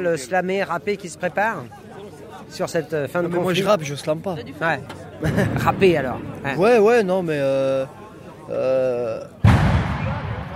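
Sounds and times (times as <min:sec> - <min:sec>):
speech: 0:00.0 - 0:01.9, 0:02.5 - 0:09.4
firecracker bursting: 0:09.4 - 0:10.5.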